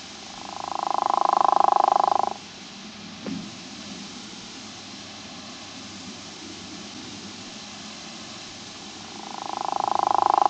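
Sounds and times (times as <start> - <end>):
true frog of family Ranidae giving a pulsed rattling call: 0.3 - 2.4, 9.0 - 10.4.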